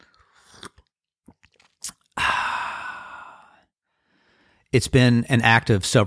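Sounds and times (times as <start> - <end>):
person sipping coffee and slurping: 0.0 - 3.6
person exhaling: 2.2 - 4.6
speech: 4.7 - 6.0.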